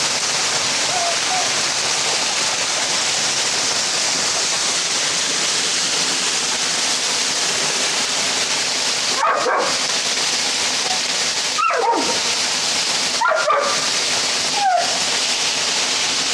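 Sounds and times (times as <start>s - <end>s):
waterfall rushing: 0.0s - 16.3s
dog scared of the water barking and whimpering: 9.2s - 9.8s, 11.6s - 12.3s, 13.2s - 13.8s, 14.5s - 15.0s.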